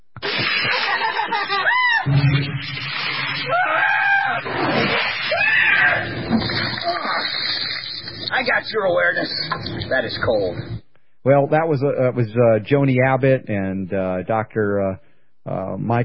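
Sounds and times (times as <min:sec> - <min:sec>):
laughter: 0:00.4 - 0:02.1
speech: 0:01.3 - 0:02.8, 0:08.4 - 0:16.0
people screaming and shrieking: 0:01.4 - 0:02.2, 0:03.2 - 0:07.7.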